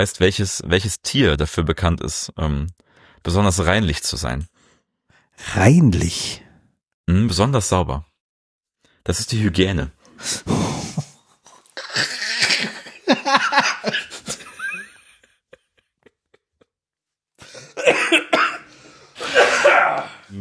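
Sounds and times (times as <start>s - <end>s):
speech: 0.0s - 4.6s, 5.4s - 6.4s, 7.1s - 8.1s, 9.0s - 10.7s
laughter: 12.2s - 16.8s
person coughing in a coughing fit: 17.5s - 20.2s.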